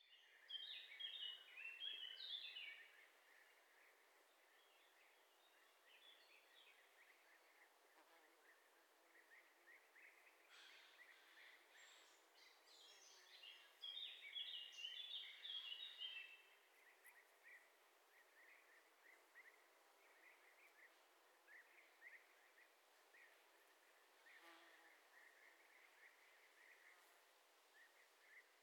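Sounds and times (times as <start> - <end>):
birds singing by a lake in an old quarry at a forest edge: 0.0 - 27.1.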